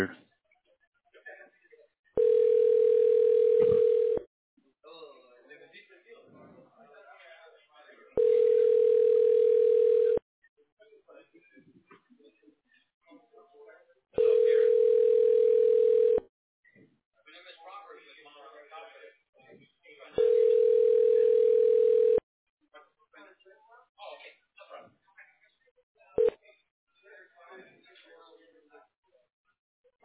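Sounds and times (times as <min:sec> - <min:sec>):
phone ringback tone: 0:02.2 - 0:04.2, 0:08.2 - 0:10.2, 0:14.2 - 0:16.2, 0:20.2 - 0:22.2.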